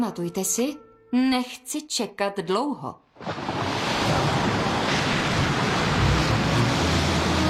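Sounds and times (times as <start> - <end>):
speech: 0.0 - 3.6
gusting wind: 3.2 - 7.4
heavy stormy sea waves roaring: 3.2 - 7.4.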